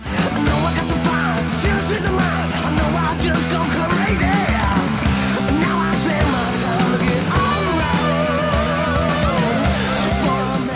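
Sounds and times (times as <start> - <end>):
male rock vocalist sustaining a long clear note: 0.0 - 10.7.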